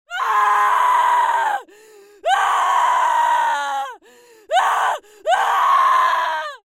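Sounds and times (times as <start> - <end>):
screaming of an insane woman: 0.1 - 1.6, 2.3 - 6.6.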